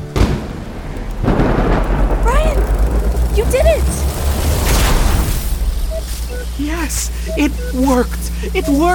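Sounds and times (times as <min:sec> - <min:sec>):
sharp loud crack of a lightning strike: 0:00.0 - 0:06.1
deep rolling thunder rumble: 0:00.0 - 0:08.4
speech: 0:06.9 - 0:08.9.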